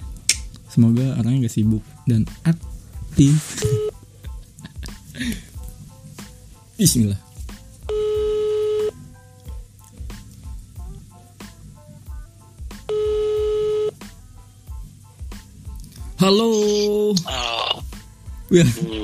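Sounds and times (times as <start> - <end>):
speech: 0.7 - 3.9, 5.2 - 5.5, 6.8 - 7.2, 16.2 - 17.6, 18.5 - 19.0
person laughing: 3.2 - 5.6, 18.6 - 19.0
telephone ringback tones of a call: 3.6 - 3.9, 7.9 - 9.0, 12.9 - 14.0.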